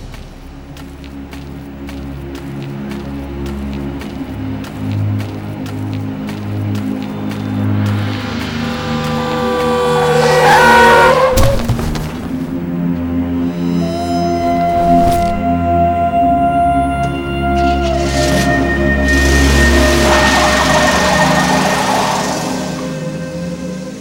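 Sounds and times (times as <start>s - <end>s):
car tire noise: 0.0s - 23.9s
loud car engine roar: 0.8s - 13.8s, 17.0s - 23.9s
car skidding: 1.4s - 13.0s, 19.1s - 23.9s
car striking a pedestrian crossing the road: 9.2s - 12.7s.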